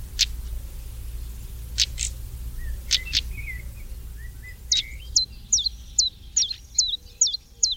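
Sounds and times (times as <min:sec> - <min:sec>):
low outdoor rumble: 0:00.0 - 0:07.7
European stonechat calling with sharp high ticking notes: 0:01.8 - 0:07.7.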